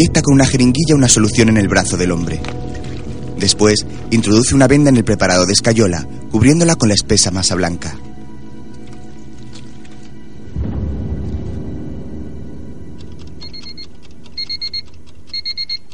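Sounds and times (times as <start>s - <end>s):
speech: 0.0s - 2.6s, 3.4s - 8.0s
timer with bright electronic beeps: 13.0s - 15.9s.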